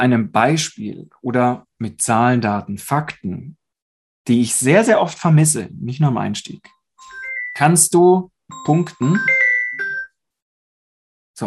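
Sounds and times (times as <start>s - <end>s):
speech: 0.0s - 3.6s, 4.2s - 6.8s, 7.6s - 9.4s
mobile phone ringing with electronic two-note chime during a live talk: 7.0s - 7.8s, 8.5s - 10.2s.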